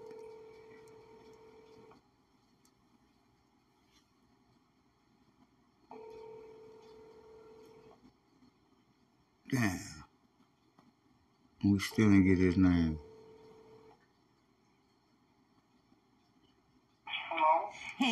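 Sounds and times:
buzzing phone call ringback tone: 0.0 - 1.9, 5.9 - 7.9, 11.9 - 13.9
speech: 9.5 - 9.9, 11.7 - 13.1.

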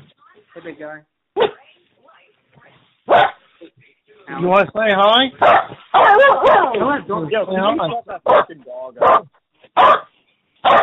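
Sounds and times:
speech: 0.6 - 1.6, 4.3 - 10.1
dog barking: 1.4 - 1.6, 3.1 - 3.4, 5.4 - 6.8, 8.2 - 10.8.

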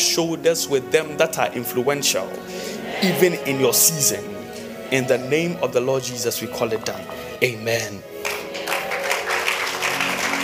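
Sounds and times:
speech: 0.2 - 8.1
audience applauding: 8.1 - 10.4.

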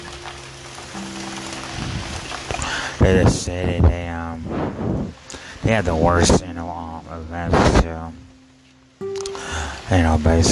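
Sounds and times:
steady rain falling: 0.0 - 10.4
speech: 3.0 - 4.6, 5.7 - 8.2, 9.9 - 10.4.

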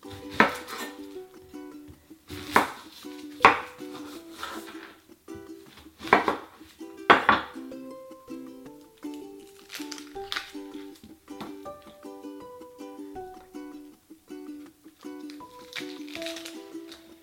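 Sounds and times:
knife quartering an onion on a cutting board: 0.1 - 0.9, 2.3 - 4.0, 6.0 - 7.6.

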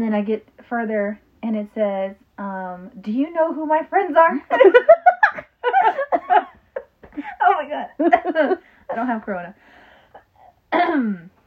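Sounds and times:
speech: 0.0 - 5.0, 7.6 - 9.7, 10.7 - 11.3
rough throat clearing cough: 10.2 - 11.3.

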